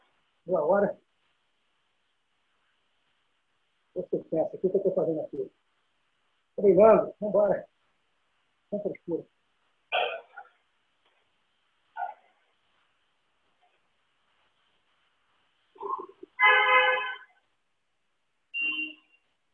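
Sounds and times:
speech: 0.5 - 1.0, 4.3 - 5.6, 6.6 - 7.7, 8.7 - 9.4
bicycle horn honking: 16.4 - 17.3.

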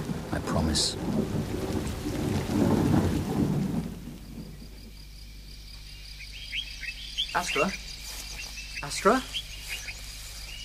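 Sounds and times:
deep rolling rumble of thunder: 0.0 - 5.2
faint insect chirps: 0.0 - 10.6
steady hiss of rain: 0.0 - 10.6
speech: 0.3 - 3.1, 7.4 - 7.8, 8.8 - 9.4.

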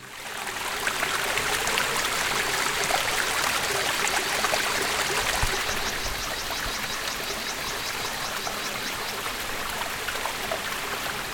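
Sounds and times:
low water trickling at a small waterfall in hot weather: 0.0 - 11.3.

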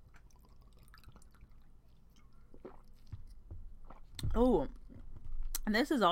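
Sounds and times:
person sipping water: 0.0 - 4.2
wet swallowing while drinking water: 0.0 - 4.3
soft gulps and clicks: 0.0 - 5.7
speech: 4.4 - 4.8, 5.7 - 6.1.

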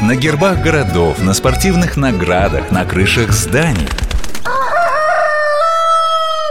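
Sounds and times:
speech: 0.1 - 4.6
rooster crowing: 4.4 - 6.5.

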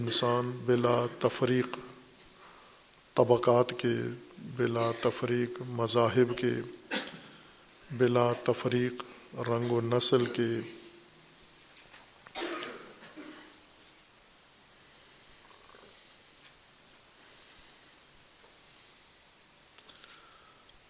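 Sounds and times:
speech: 0.0 - 1.9, 3.2 - 6.8, 7.9 - 10.8
audience member coughing: 4.7 - 5.2, 6.3 - 7.4, 12.3 - 13.6
faint clicks: 19.7 - 20.8.

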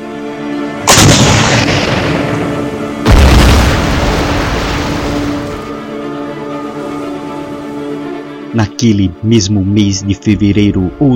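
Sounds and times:
heavy naval cannon blasts: 0.9 - 5.5
speech: 8.6 - 11.1.

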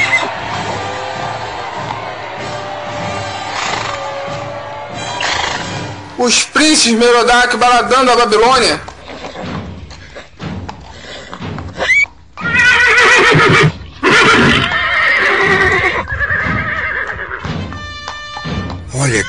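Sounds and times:
hoof clops and thuds: 0.0 - 6.2, 7.0 - 19.2
horses neighing and whinnying: 0.0 - 6.2, 8.8 - 17.7
speech: 6.2 - 8.9.

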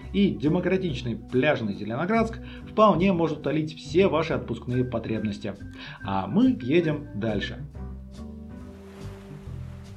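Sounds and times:
speech: 0.1 - 8.2
waves washing in: 8.6 - 9.9
sea surf: 8.7 - 9.9.

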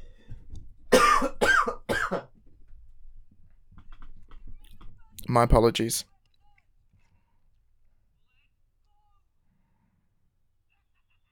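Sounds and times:
low noise: 0.0 - 11.3
harsh coughs: 0.9 - 2.3
speech: 5.3 - 6.1.

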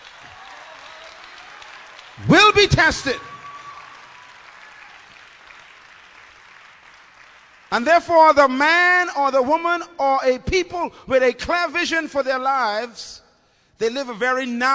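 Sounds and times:
crowd noise: 0.0 - 3.8
audience shouting and cheering: 0.0 - 5.2
audience clapping: 0.0 - 8.3
speech: 2.2 - 3.3, 7.7 - 13.2, 13.8 - 14.7.

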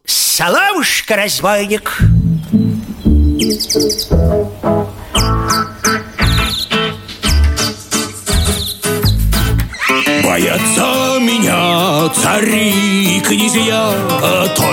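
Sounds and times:
speech: 0.4 - 2.6, 3.4 - 4.5
steady rhythmic musical backing: 2.0 - 14.7
chirping nightingale-style whistling in trilling bursts: 2.1 - 11.4.

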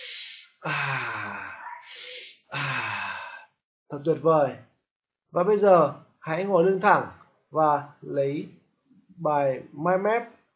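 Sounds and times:
deep breathing: 0.0 - 3.6
voiced sigh: 0.0 - 3.6
speech: 0.6 - 1.1, 3.9 - 4.7, 5.3 - 8.6, 9.2 - 10.4.

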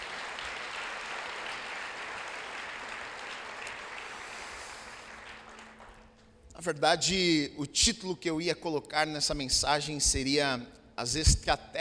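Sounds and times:
audience applauding: 0.0 - 6.3
speech: 6.6 - 11.7.

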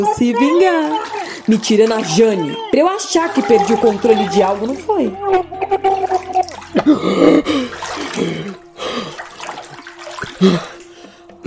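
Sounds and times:
speech: 0.0 - 9.1, 10.4 - 10.7
water splashing and gurgling as a person's head is plunged in: 0.0 - 11.4.

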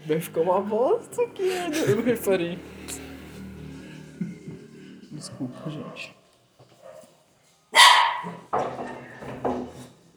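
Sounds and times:
speech: 0.1 - 3.1, 5.3 - 6.2
laughter: 1.2 - 3.2, 3.9 - 5.1
dogs barking: 7.8 - 8.4.

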